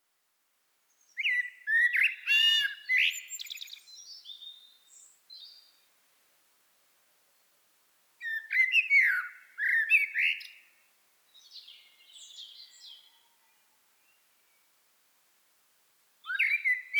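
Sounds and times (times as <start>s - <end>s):
common blackbird Turdus merula delivering mellow warbled fluted phrases: 0.9s - 5.9s, 8.2s - 10.7s, 11.3s - 14.7s, 16.2s - 16.9s.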